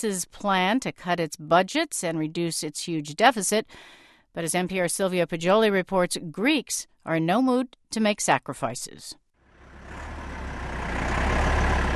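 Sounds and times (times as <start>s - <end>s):
speech: 0.0s - 9.2s
heavy diesel tractor engines rumbling while blocking a highway lane: 9.4s - 11.9s.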